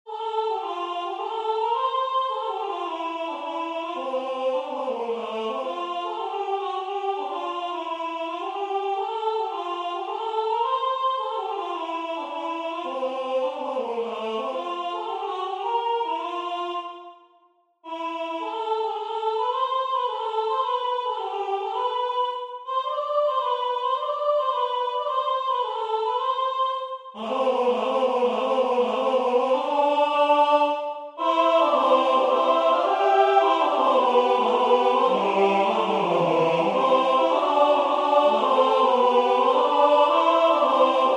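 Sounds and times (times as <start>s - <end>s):
people singing: 0.1s - 17.1s, 17.9s - 26.4s, 27.2s - 41.1s.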